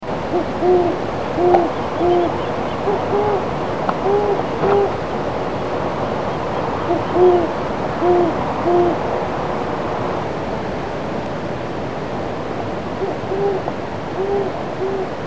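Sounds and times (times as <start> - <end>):
steady background hiss: 0.0 - 15.2
Great horned owl giving soft low hoots: 0.2 - 5.2, 6.3 - 9.1, 13.0 - 15.2
speech: 0.4 - 3.5.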